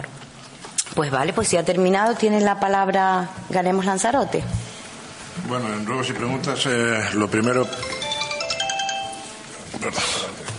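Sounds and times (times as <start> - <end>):
speech: 1.0 - 4.7, 5.4 - 8.0
mobile phone ringtone during a municipal council meeting in Lanzarote: 7.4 - 9.5.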